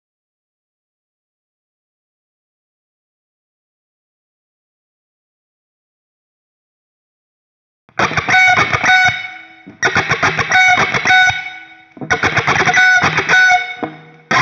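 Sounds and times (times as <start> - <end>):
clean guitar intro: 7.9 - 14.3.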